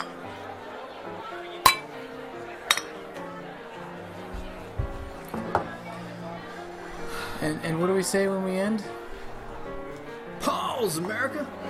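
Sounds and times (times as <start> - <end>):
glasses clinking in a toast: 0.0 - 0.2, 1.6 - 1.9, 2.6 - 3.0
low murmur of voices: 0.0 - 11.6
speech: 7.4 - 9.0, 10.8 - 11.6.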